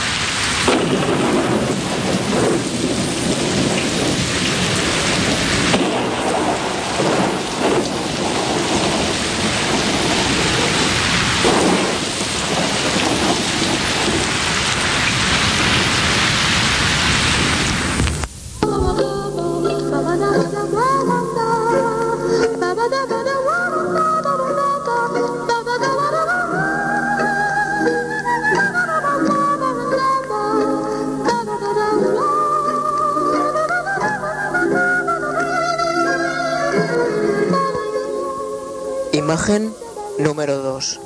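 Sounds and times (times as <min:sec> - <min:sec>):
low rumbles of thunder: 0:00.0 - 0:19.2
heavy steady rain: 0:00.0 - 0:41.0
speech: 0:39.4 - 0:41.0.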